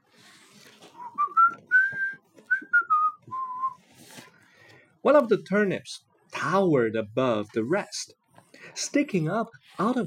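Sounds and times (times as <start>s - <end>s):
person whistling a cheerful melody: 1.0s - 3.8s
speech: 5.0s - 8.2s, 8.8s - 10.0s.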